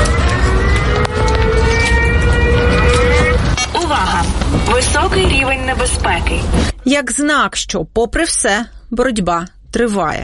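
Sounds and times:
air raid siren wailing: 0.0s - 6.5s
loud dense outdoor rumble: 0.0s - 6.8s
speech: 6.3s - 10.2s.

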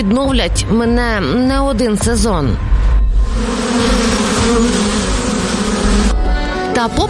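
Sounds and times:
speech: 0.0s - 4.9s, 6.8s - 7.0s
many honeybees buzzing together: 3.2s - 6.6s.

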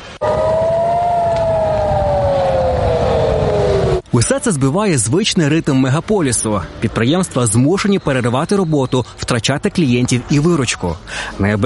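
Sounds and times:
air raid siren wailing in Kyiv: 0.1s - 4.0s
speech: 4.1s - 11.6s.

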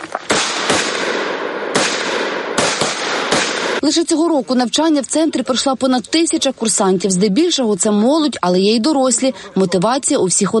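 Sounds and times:
gunshots fired at a target at a firing range during military training: 0.0s - 3.8s
speech: 3.9s - 10.5s.

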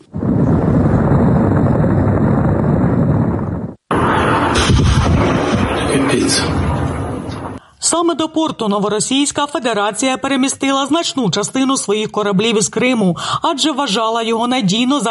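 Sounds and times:
continuous rumbling noise: 0.0s - 7.6s
air defense guns firing at incoming drones: 3.9s - 7.6s
speech: 7.9s - 15.0s.

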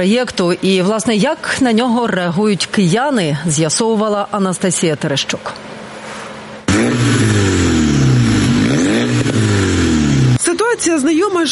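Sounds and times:
speech: 0.0s - 5.7s, 10.8s - 11.5s
car with straight-through exhaust revving hard: 6.6s - 10.4s.

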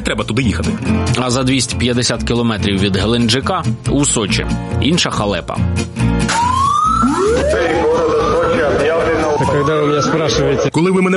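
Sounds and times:
speech: 0.1s - 6.5s, 9.6s - 11.1s
air raid siren wailing in rising sweeps: 6.3s - 10.7s
indistinct voices of a crowd: 7.0s - 10.7s.

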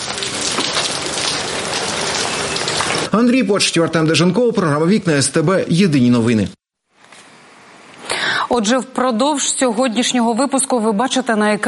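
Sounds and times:
heavy May rain pouring down: 0.0s - 4.8s
speech: 3.1s - 6.6s, 8.5s - 11.6s.

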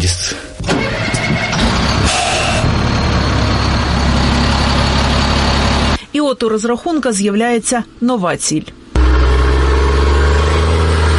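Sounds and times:
speech: 0.0s - 0.4s, 6.2s - 8.8s
new military vehicle diesel engine rumbling in a field in Zaporizhzhia region Ukraine: 0.0s - 6.1s, 9.0s - 11.1s.

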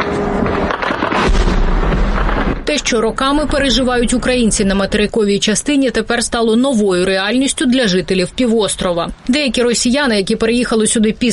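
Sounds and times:
loud explosions at night: 0.0s - 6.4s
heavy sustained low rumble: 0.0s - 9.2s
speech: 2.8s - 11.3s.

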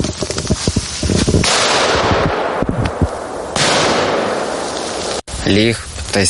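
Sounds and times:
buried training mine exploding in a mine-safety drill with pops and hissing crackle: 0.1s - 6.2s
speech: 5.5s - 6.2s.

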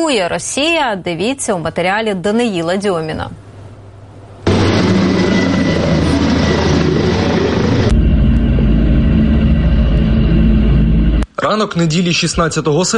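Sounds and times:
speech: 0.0s - 3.4s, 11.5s - 12.9s
attack drones flying overhead in a mass attack on Moscow Oblast: 4.4s - 11.2s.

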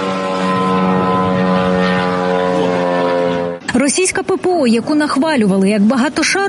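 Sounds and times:
drone propeller buzzing with a droning engine whine: 0.0s - 3.8s
speech: 3.8s - 6.4s.

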